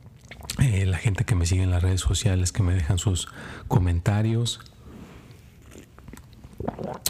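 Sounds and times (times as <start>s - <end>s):
swallow: 0.1s - 0.6s, 5.6s - 7.0s
speech: 0.6s - 4.8s
person sipping coffee in Santana California: 4.6s - 7.0s.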